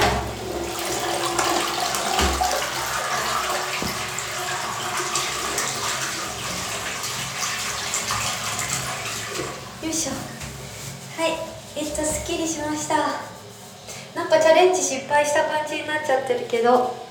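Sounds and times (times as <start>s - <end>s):
toilet flushing: 0.0s - 12.9s
speech: 15.0s - 17.0s.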